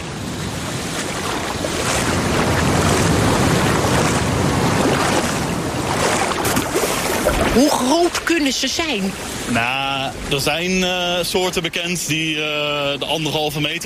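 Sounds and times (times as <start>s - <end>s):
wind rushing across the microphone: 0.0s - 7.7s
sea waves breaking on a beach: 0.0s - 13.8s
speech: 7.6s - 13.8s.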